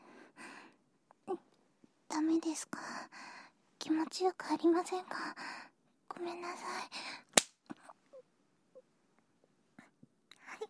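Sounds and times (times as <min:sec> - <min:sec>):
speech: 0:02.3 - 0:03.2, 0:03.9 - 0:07.2
slaps across the face: 0:07.3 - 0:07.6.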